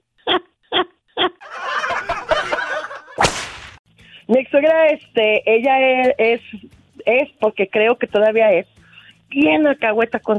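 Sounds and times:
noisy laughter: 1.4 - 3.2
voice imitating whip cracks: 3.2 - 3.8
speech: 4.3 - 8.7, 9.3 - 10.3.

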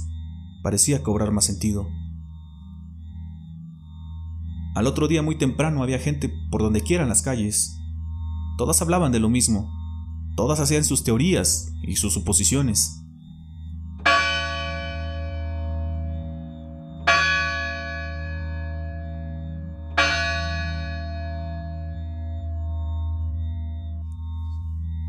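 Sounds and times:
steady low hum: 0.0 - 25.0
speech: 0.6 - 2.0, 4.8 - 7.8, 8.6 - 9.8, 10.4 - 13.0
church bell tolling to announce a death in the village: 14.0 - 16.3, 17.0 - 22.0.

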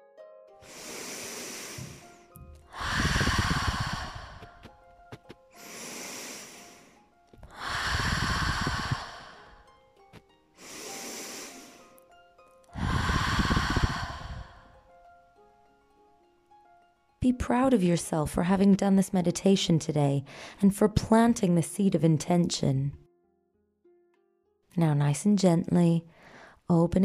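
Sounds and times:
deep exhale through the mouth: 0.6 - 4.7, 5.6 - 9.6, 10.6 - 11.9, 12.7 - 14.8
deep inhale through the nose: 0.6 - 4.7, 5.6 - 9.6, 10.6 - 11.9, 12.7 - 14.8
speech: 17.3 - 23.0, 24.8 - 27.0.

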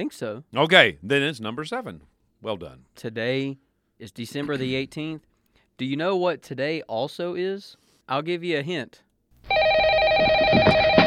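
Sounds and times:
speech: 0.0 - 9.6
telephone ringing with a bright electronic tone: 9.5 - 11.0.

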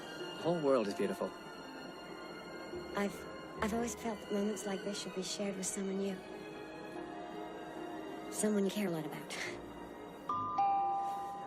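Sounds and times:
speech: 0.4 - 1.6, 2.9 - 6.4, 8.4 - 9.6
two-tone doorbell chime: 10.3 - 11.4.

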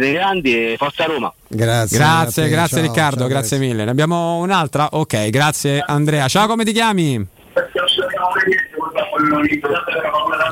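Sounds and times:
radio playing in background over telephone line: 0.0 - 3.7, 7.4 - 10.5
speech: 0.0 - 8.6, 9.2 - 10.5.

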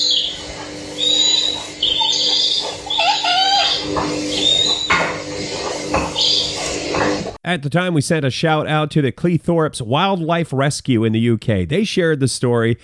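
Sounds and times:
electronic owl hoots and chirps from a plush owl toy: 0.0 - 7.3
speech: 7.5 - 12.8.

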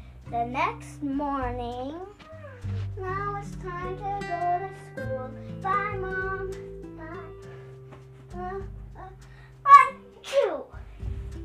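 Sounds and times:
speech: 0.3 - 7.2, 8.4 - 9.3
child sneezing: 9.7 - 10.8.

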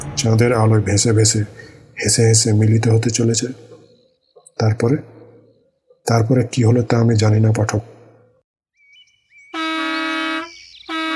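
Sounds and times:
speech: 0.2 - 3.7, 4.6 - 5.1, 6.0 - 7.9
jeep horn honking loudly: 9.6 - 11.1.

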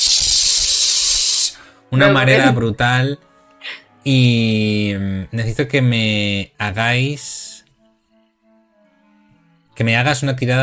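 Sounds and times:
pressurized steam jet hissing from a broken tube of half-brewed beer: 0.0 - 1.6
speech: 1.9 - 3.3, 4.0 - 7.4, 9.8 - 10.6.

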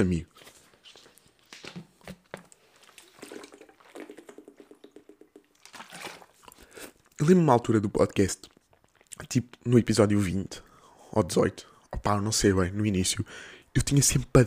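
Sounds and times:
speech: 0.0 - 0.5, 7.2 - 8.5, 9.3 - 14.4
person slurping water: 2.7 - 7.2
person gulping and swallowing water: 2.8 - 7.2, 8.5 - 9.2.

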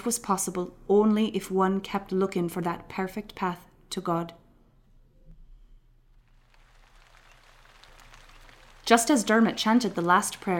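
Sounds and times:
speech: 0.0 - 4.4, 8.9 - 10.5
fine light rain pattering: 6.1 - 10.5.

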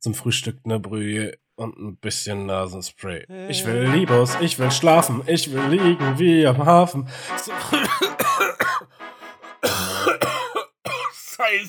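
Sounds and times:
speech: 0.0 - 10.3, 11.4 - 11.6
harsh coughing: 7.5 - 8.9, 9.6 - 11.3.

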